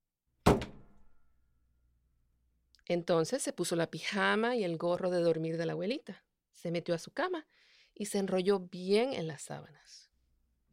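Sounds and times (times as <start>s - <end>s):
door shutting with solid thunk and rattle: 0.4s - 1.0s
speech: 2.9s - 10.1s.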